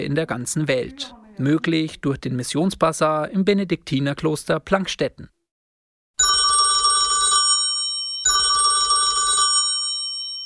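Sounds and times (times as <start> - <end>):
speech: 0.0 - 5.4
telephone bell ringing: 6.2 - 10.4.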